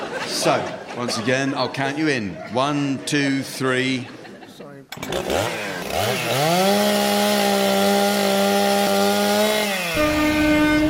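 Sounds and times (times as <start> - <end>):
laughter: 0.0 - 4.9
speech: 0.4 - 4.2, 5.0 - 7.7
person imitating a chainsaw with their voice: 5.0 - 10.8.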